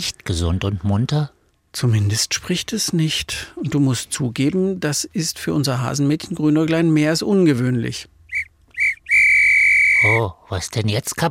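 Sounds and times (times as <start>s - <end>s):
speech: 0.0s - 8.1s, 10.0s - 11.2s
whistle blasts: 8.3s - 10.3s.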